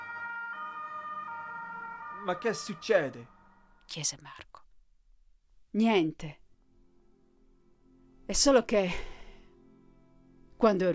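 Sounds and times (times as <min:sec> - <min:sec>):
police siren sound effect wailing: 0:00.0 - 0:03.8
speech: 0:02.2 - 0:04.6, 0:05.7 - 0:06.4, 0:08.3 - 0:09.1, 0:10.6 - 0:10.9.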